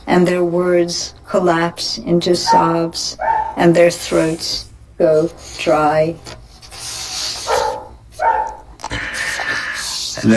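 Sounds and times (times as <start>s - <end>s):
speech: 0.1s - 6.4s
dog barking: 2.4s - 3.6s, 7.4s - 8.7s.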